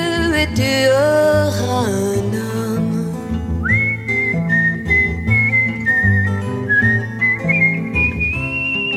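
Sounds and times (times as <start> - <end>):
full instrumental backing: 0.0 - 8.9
speech: 0.4 - 2.1
clear sustained whistled melody: 3.6 - 8.9.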